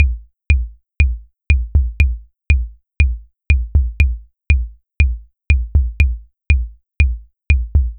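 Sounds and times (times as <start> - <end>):
short 808 kick drum: 0.0 - 7.9.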